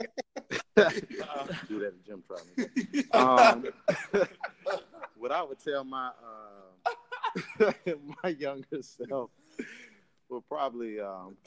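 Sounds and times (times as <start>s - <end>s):
person clearing throat: 0.0s - 1.8s, 3.0s - 4.8s
laughter: 0.0s - 5.6s, 6.9s - 9.9s
speech: 0.8s - 11.4s.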